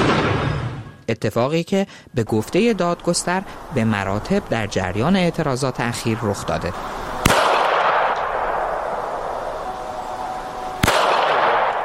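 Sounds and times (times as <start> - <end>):
gunshots at a protest in Iran: 0.0 - 1.0, 7.2 - 11.8
speech: 1.1 - 7.0
outdoor crowd noise roaring: 8.0 - 11.8.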